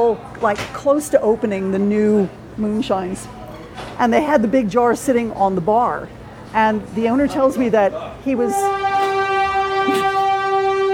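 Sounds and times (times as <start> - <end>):
speech: 0.0 - 3.4, 4.0 - 9.0
train horn blaring: 8.3 - 10.9.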